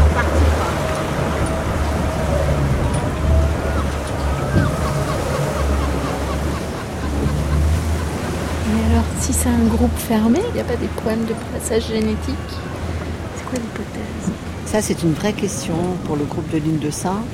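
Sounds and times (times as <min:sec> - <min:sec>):
rough choppy sea waves roaring: 0:00.0 - 0:17.3
speech: 0:09.6 - 0:12.7, 0:13.5 - 0:17.3.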